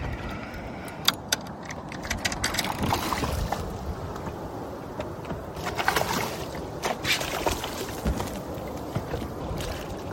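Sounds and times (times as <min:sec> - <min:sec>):
fishing gear rattling and clicking on a small boat: 0:00.0 - 0:10.1
steady outdoor rumble: 0:00.0 - 0:10.1
water splashing as a barracuda is brought into the boat: 0:02.5 - 0:10.1.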